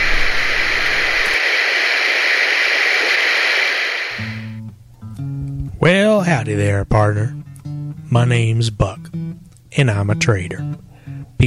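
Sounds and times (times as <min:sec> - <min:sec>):
radio static: 0:00.0 - 0:04.6
low hum: 0:00.0 - 0:04.7
speech: 0:05.8 - 0:07.5, 0:08.1 - 0:11.4.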